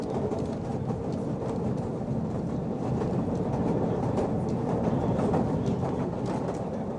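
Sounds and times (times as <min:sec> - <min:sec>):
tram rumbling along its rails: 0:00.0 - 0:06.9.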